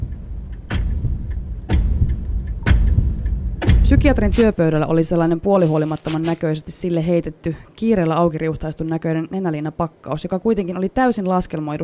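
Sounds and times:
clock ticking in a sterile room: 0.0s - 5.5s
low constant rumble: 0.0s - 11.8s
speech: 3.9s - 11.8s.

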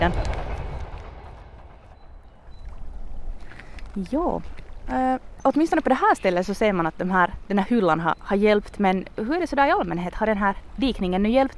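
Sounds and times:
speech: 0.0s - 0.3s, 4.0s - 11.5s
train passing by nearby: 0.0s - 3.4s.

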